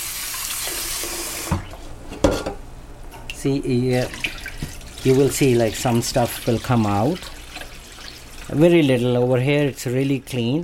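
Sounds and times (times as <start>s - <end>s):
tap water running in a sink: 0.0s - 1.7s, 3.9s - 9.2s
speech: 3.4s - 4.3s, 5.0s - 7.3s, 8.5s - 10.6s.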